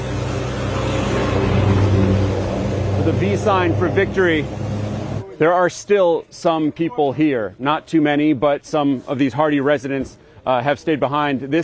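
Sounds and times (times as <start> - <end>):
cars and military vehicles engines rumbling on the road to Bakhmut: 0.0 - 5.4
broadband road noise from cars and military vehicles: 0.0 - 5.9
speech: 3.1 - 4.6, 5.4 - 11.6.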